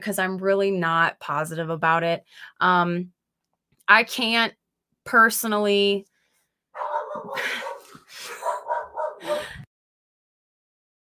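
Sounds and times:
speech: 0.0 - 3.2, 3.9 - 6.1, 6.8 - 7.7
protective dogs barking: 6.8 - 9.5.

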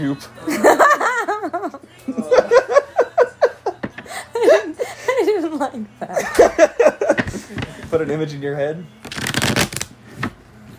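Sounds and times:
speech: 0.0 - 0.8, 1.5 - 2.7, 8.0 - 9.0
laughter: 0.4 - 5.4, 6.0 - 7.6
deck of cards riffle-shuffled: 9.0 - 10.7.

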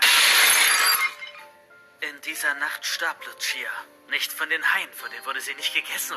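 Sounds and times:
glass pane shattering: 0.0 - 1.4
tinkling glass shards: 0.3 - 1.3
speech: 2.2 - 6.1.

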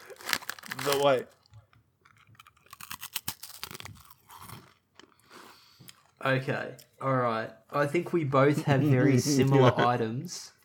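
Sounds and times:
crisp being crunched and chewed: 0.0 - 5.2
speech: 0.8 - 1.4, 6.2 - 10.6
laughter: 8.5 - 10.3.

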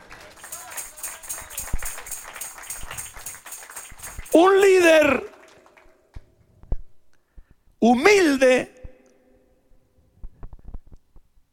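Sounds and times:
sparse clapping from a small audience: 0.0 - 6.3
speech: 4.4 - 5.3, 7.8 - 8.7.

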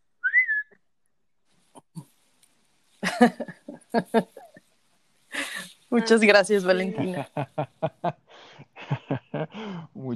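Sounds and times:
single short rising whistle: 0.2 - 0.8
laughter: 3.0 - 4.6, 6.8 - 10.1
speech: 3.2 - 4.4, 5.9 - 8.2.

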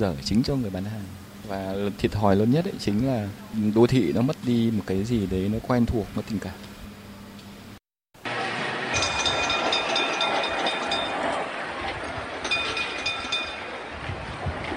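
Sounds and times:
speech: 0.0 - 6.7
rail car rumbling and rattling rolling by: 8.9 - 13.8
Hanoi tram bell clanging: 8.9 - 13.9.

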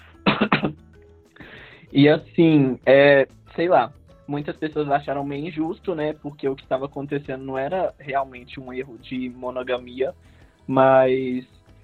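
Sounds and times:
rough throat clearing: 0.2 - 0.8
speech: 1.9 - 11.6.

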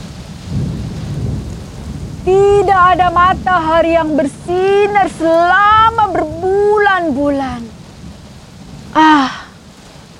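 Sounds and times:
deep rolling thunder of a rainy-season storm over a village: 0.0 - 10.1
rain falling in a rainy-season storm over a village: 0.0 - 10.1
speech: 2.3 - 7.7.

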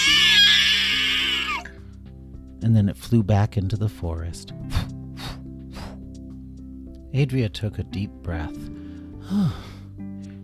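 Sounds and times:
harpy shrieking on a branch at the edge of a wood: 0.0 - 1.8
speech: 2.6 - 4.8, 7.1 - 9.7.

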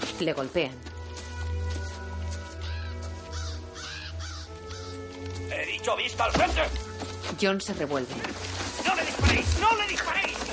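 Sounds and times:
speech: 0.2 - 0.9, 5.8 - 10.4
crows cawing in a meadow: 2.4 - 5.3.

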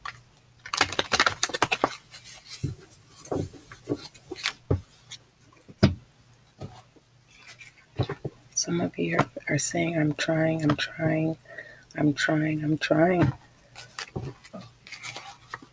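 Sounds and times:
deck of tarot cards being shuffled: 0.0 - 5.2, 13.7 - 15.7
speech: 8.7 - 13.4.

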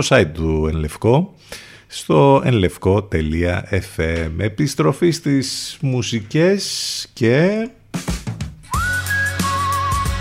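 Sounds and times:
speech: 0.0 - 8.1
full instrumental backing: 8.0 - 10.1
carefree human whistled melody: 8.7 - 10.1.

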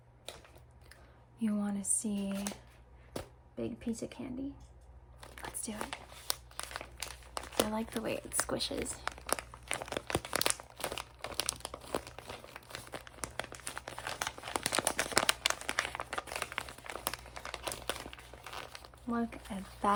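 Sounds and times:
speech: 1.4 - 2.7, 3.6 - 4.7, 5.6 - 6.2, 7.6 - 9.1, 19.1 - 19.9
wrapping paper crinkling on a present being opened: 2.2 - 2.7, 5.2 - 19.9.

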